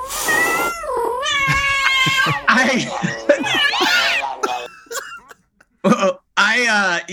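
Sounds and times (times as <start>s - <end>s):
voice imitating a cat in heat yowling and wailing: 0.3s - 4.7s
laughter: 1.4s - 6.1s.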